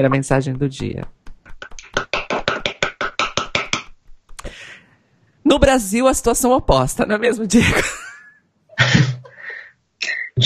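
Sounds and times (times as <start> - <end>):
speech: 0.0 - 1.2, 5.5 - 8.1
hand clapping: 0.5 - 4.5
laughter: 7.6 - 9.5.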